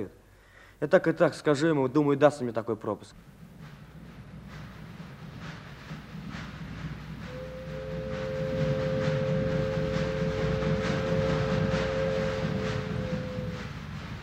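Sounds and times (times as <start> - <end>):
speech: 0.8 - 3.4
train approaching a station rumbling and clattering: 3.1 - 14.2
long two-tone train horn or whistle: 7.2 - 14.2.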